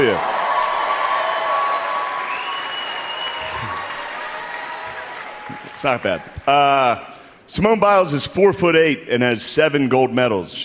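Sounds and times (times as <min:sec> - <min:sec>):
audience applause: 0:00.0 - 0:06.6
speech: 0:05.8 - 0:10.6.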